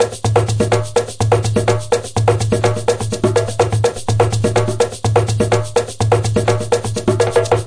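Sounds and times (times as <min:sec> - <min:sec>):
Brazilian shaker: 0:00.0 - 0:07.6
drum loops and breaks: 0:00.0 - 0:07.6.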